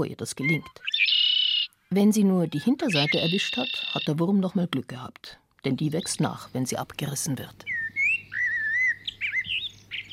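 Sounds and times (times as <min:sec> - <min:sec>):
speech: 0:00.0 - 0:01.1, 0:01.9 - 0:07.8
common blackbird singing: 0:00.4 - 0:01.7, 0:02.5 - 0:04.2, 0:07.6 - 0:10.1.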